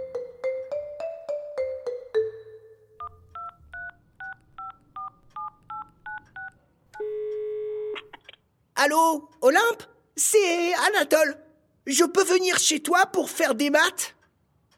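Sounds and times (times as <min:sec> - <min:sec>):
telephone keypad beeps dialing a number: 0:03.0 - 0:08.1
speech: 0:08.8 - 0:14.2.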